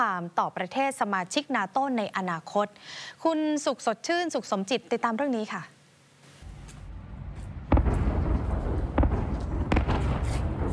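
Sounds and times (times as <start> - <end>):
speech: 0.0 - 5.8
explosions from a large attack on a city at night booming and echoing: 6.4 - 10.7
heavy continuous rumble: 6.4 - 10.7.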